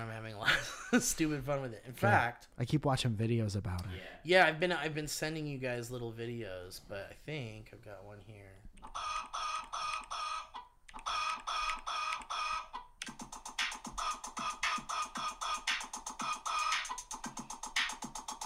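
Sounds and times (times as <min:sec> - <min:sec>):
speech: 0:00.0 - 0:10.1
backyard chickens clucking: 0:08.8 - 0:17.3.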